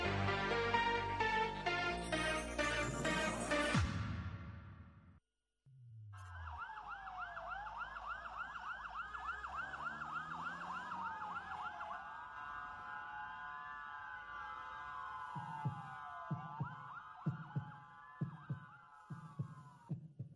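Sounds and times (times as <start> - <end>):
emergency siren wailing: 0.0 - 3.8, 6.2 - 19.8
heartbeat sound effect with paired low thumps: 15.3 - 20.3.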